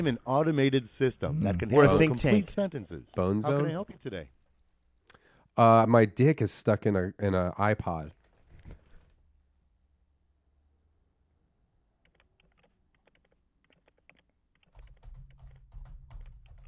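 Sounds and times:
speech: 0.0s - 4.4s, 5.6s - 8.2s
typing on a computer keyboard: 12.0s - 16.6s.

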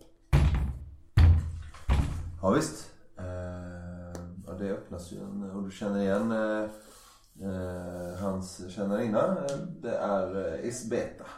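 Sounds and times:
heavy knocks on a wooden door: 0.3s - 2.4s
speech: 2.4s - 2.9s, 4.6s - 11.3s.

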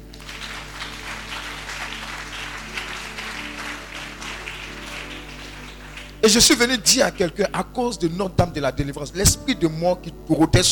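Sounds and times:
congregation applauding at a Marian deliverance retreat in a sanctuary: 0.0s - 7.4s
speech: 6.2s - 10.6s.

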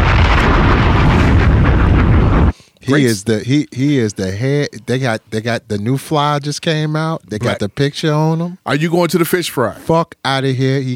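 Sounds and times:
bomb explosion sound effect: 0.0s - 2.6s
speech: 2.9s - 10.9s.

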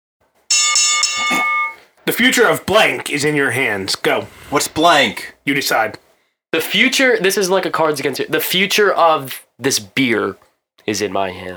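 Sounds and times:
bright high-pitched metallic bell ringing: 0.5s - 1.8s
speech: 2.1s - 11.5s.

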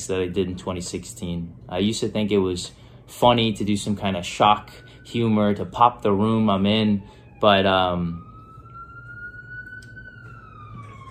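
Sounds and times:
speech: 0.0s - 8.3s
ambulance siren passing by: 3.4s - 11.0s.

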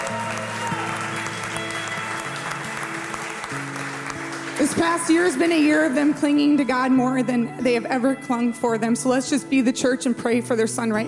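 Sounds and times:
crowd applauding in a large room: 0.0s - 7.4s
speech: 4.6s - 11.0s.

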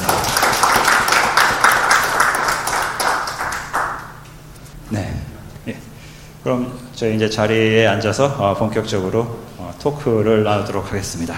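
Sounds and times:
crowd clapping to welcome a guest onto a talk stage: 0.0s - 4.4s
speech: 6.5s - 11.3s.

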